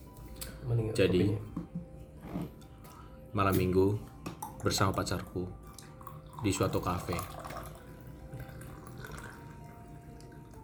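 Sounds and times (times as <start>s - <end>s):
speech: 0.6s - 1.7s, 3.4s - 5.6s, 6.4s - 7.4s
faint trickling and dripping water: 4.2s - 10.6s
water pouring steadily into a cup: 4.2s - 10.6s.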